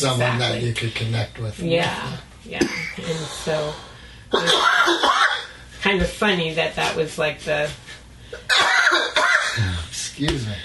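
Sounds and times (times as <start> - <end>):
speech: 0.0 - 8.7, 9.6 - 10.6
person coughing: 2.6 - 3.0, 4.3 - 5.5, 8.4 - 9.7.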